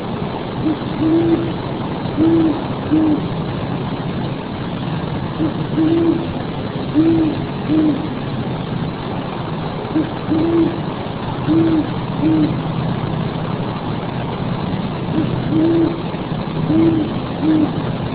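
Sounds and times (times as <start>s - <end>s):
steady low engine rumble: 0.0s - 18.1s
owl hooting: 0.6s - 1.6s, 2.2s - 3.3s, 5.4s - 8.2s, 9.9s - 12.6s, 15.1s - 17.8s.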